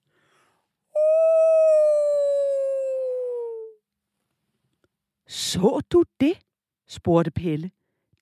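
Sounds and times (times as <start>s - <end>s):
fox howling like a wolf in a forest: 1.0s - 3.8s
speech: 5.6s - 7.8s.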